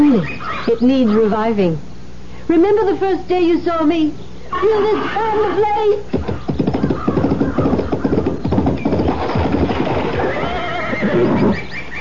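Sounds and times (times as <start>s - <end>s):
speech: 0.2s - 1.9s, 2.5s - 6.3s
horse neighing: 4.5s - 11.9s.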